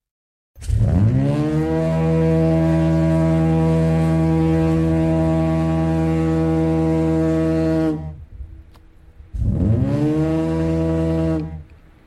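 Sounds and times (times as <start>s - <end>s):
compressed air foghorn blasting deep: 0.7s - 8.4s, 9.3s - 11.7s.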